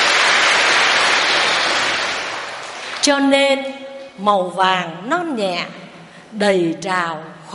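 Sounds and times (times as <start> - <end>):
crowd applauding: 0.0 - 3.0
speech: 3.0 - 7.5.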